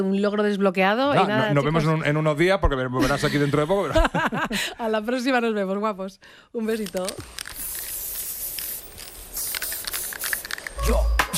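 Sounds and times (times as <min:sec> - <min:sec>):
speech: 0:00.0 - 0:07.4
aerosol spray paint can hissing: 0:07.0 - 0:10.8.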